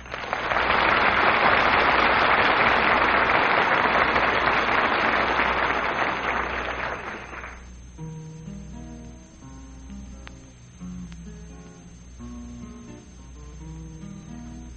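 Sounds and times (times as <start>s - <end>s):
audience applause: 0.0s - 7.7s.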